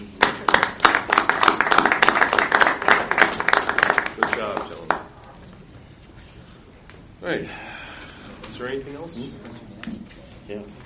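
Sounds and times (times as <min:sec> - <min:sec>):
room full of people applauding: 0:00.0 - 0:05.2
speech: 0:07.3 - 0:07.7, 0:08.6 - 0:10.8.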